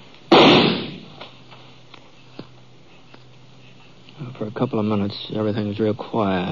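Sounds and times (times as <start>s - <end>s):
gunshot echoing in a canyon: 0.3s - 1.2s
speech: 4.4s - 6.5s.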